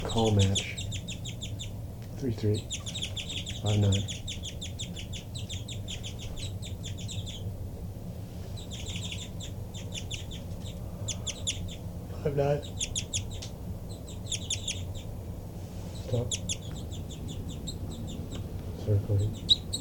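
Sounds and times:
bird giving rapid high flight calls: 0.0 - 19.8
low steady rumble: 0.0 - 19.8
speech: 0.2 - 0.8, 2.2 - 2.9, 3.6 - 4.2, 12.2 - 12.8, 16.1 - 16.4, 18.9 - 19.5
brief lower bird call: 2.5 - 7.6, 8.4 - 12.0, 12.6 - 15.2, 15.8 - 19.8.

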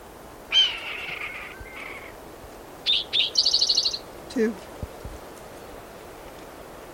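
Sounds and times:
red-tailed hawk screaming overhead: 0.5 - 2.2
speech: 4.4 - 4.7.

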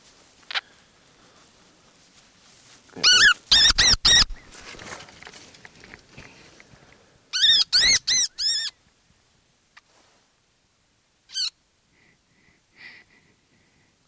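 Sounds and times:
faint rustling: 0.0 - 3.5, 4.2 - 7.2, 9.1 - 10.4
baby wood rat squeaking: 3.0 - 4.4, 7.4 - 8.8.

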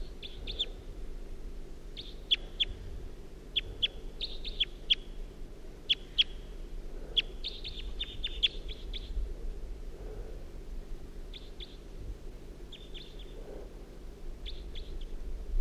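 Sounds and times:
wild bird calling in sharp high chirps: 0.0 - 0.8, 2.0 - 2.9, 3.5 - 5.2, 5.8 - 9.2, 11.3 - 11.9, 12.7 - 13.8, 14.4 - 15.2
faint steady low rumble: 0.0 - 15.6.

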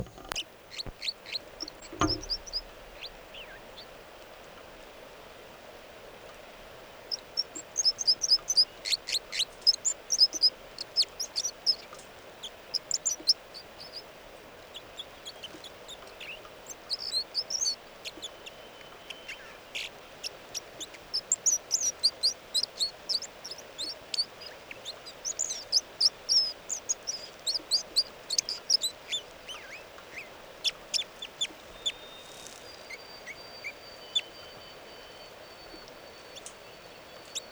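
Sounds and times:
dull thump: 0.0 - 1.0, 1.6 - 3.3
bird song with short high-pitched chirping notes: 0.0 - 4.0, 7.1 - 37.4
quiet hiss: 0.0 - 37.4.

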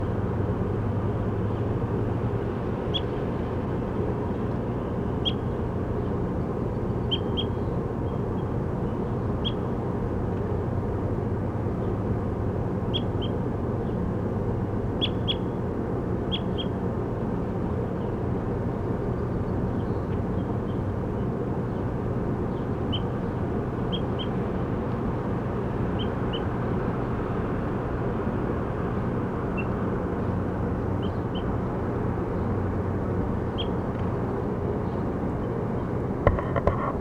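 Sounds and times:
low broadband rumble of traffic or aircraft: 0.0 - 36.9
high bird chirps outdoors: 33.5 - 33.8.

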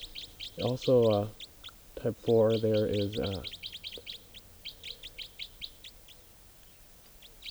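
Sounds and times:
wild female bird calling in a rapid series of high-pitched chirps: 0.0 - 6.1
speech: 0.6 - 1.4, 2.0 - 3.6.

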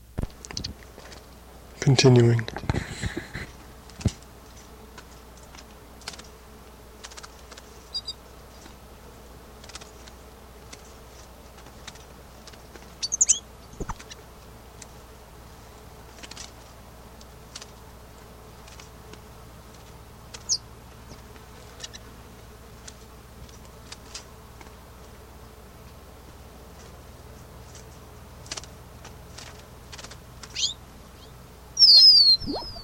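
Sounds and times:
steady low hum: 0.0 - 32.8
speech: 1.8 - 2.9
female bird chirping: 7.9 - 8.2, 13.0 - 13.9, 30.5 - 32.8
thin high-pitched calls from a female bird: 7.9 - 8.2, 30.5 - 32.8.

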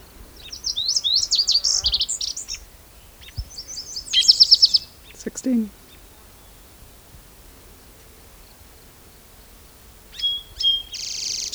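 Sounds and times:
song sparrow singing: 0.0 - 6.8, 10.1 - 11.5
speech: 5.4 - 5.8.

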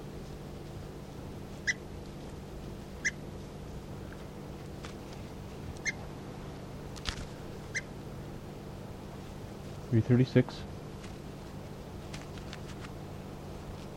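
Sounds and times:
low steady hum: 0.0 - 13.9
bird chirping while being handled: 3.0 - 3.2.

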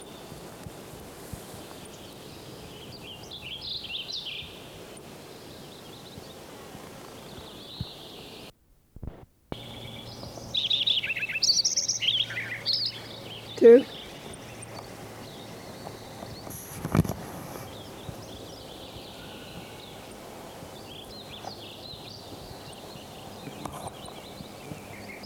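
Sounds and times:
Wilson's warbler singing: 0.0 - 8.5, 9.5 - 25.2
steady hiss: 0.0 - 25.2
speech: 13.6 - 13.9.

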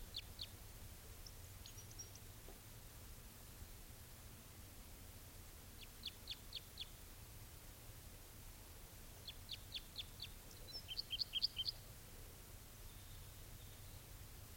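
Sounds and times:
male bird chirping while perched in a dead tree: 0.0 - 0.6, 1.2 - 2.3, 5.8 - 7.0, 9.2 - 11.9, 12.8 - 14.2
steady hiss: 0.0 - 14.5.

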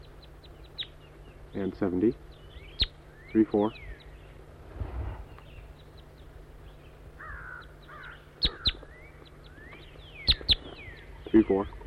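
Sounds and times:
quiet hiss: 0.0 - 11.8
speech: 1.5 - 2.3, 3.3 - 3.9, 11.3 - 11.8
wild bird calls with a crow-like caw: 7.2 - 11.8.

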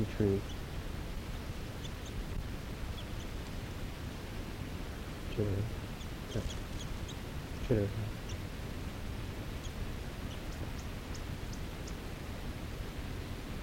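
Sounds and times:
speech: 0.0 - 0.6, 5.4 - 6.6, 7.7 - 8.2
male bird chittering call: 0.0 - 0.7, 1.6 - 2.2, 2.8 - 3.6, 5.7 - 8.4, 9.6 - 12.0
hiss: 0.0 - 13.6.

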